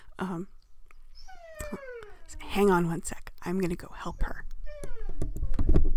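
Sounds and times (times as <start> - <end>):
speech: 0.2 - 0.6, 2.6 - 4.5
dog whining for attention: 0.9 - 2.8, 4.1 - 5.8.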